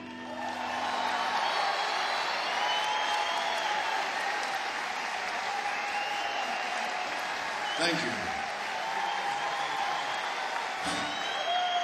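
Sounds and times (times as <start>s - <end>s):
audience applause at a live concert: 0.0s - 11.8s
speech: 7.8s - 8.4s.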